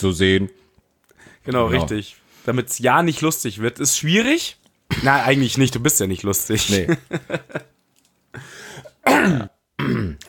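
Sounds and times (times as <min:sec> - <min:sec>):
speech: 0:00.0 - 0:00.6, 0:01.4 - 0:10.2
person clearing throat: 0:04.9 - 0:05.6, 0:08.9 - 0:10.2
person coughing: 0:04.9 - 0:05.6, 0:08.8 - 0:10.2
laughter: 0:06.6 - 0:07.7.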